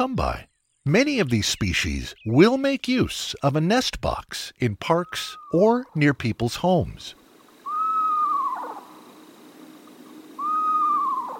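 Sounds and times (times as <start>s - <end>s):
speech: 0.0s - 7.2s
screech owl giving quavering descending whinny calls: 7.6s - 11.3s.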